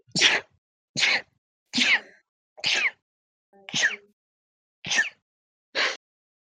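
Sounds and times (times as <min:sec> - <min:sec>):
loud sharp sneezes: 0:00.1 - 0:03.0, 0:03.7 - 0:04.1, 0:04.8 - 0:05.2
speech: 0:03.7 - 0:04.0.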